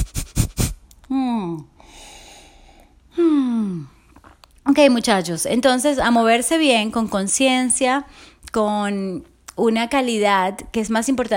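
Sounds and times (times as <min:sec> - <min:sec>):
forceful nasal exhalations in kapalabhati yoga breathing: 0:00.0 - 0:00.9, 0:01.8 - 0:04.1
speech: 0:01.2 - 0:01.8, 0:04.8 - 0:11.3
drawn-out voiced sighs: 0:01.8 - 0:04.0.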